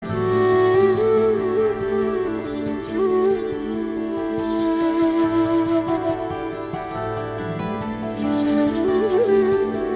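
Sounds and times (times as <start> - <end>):
flute background music: 0.0 - 9.9.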